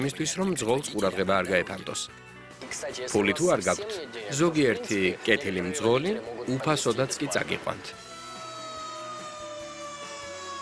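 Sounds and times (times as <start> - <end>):
speech: 0.0 - 8.0
fire truck siren: 5.8 - 10.5.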